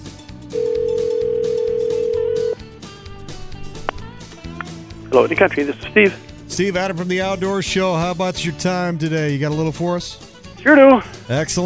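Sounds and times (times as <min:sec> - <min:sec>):
telephone dial tone while placing a call to a sports shop: 0:00.5 - 0:02.6
speech: 0:05.2 - 0:11.6.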